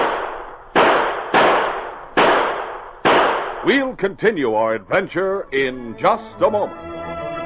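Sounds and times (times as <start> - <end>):
gunshots from men firing at a target: 0.0 - 3.9
speech: 3.6 - 7.0.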